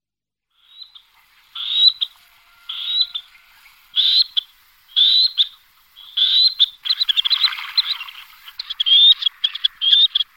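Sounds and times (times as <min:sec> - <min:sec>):
black-necked grebe calling with rising whistled notes and chattering trill: 0:02.7 - 0:03.4, 0:04.0 - 0:10.3.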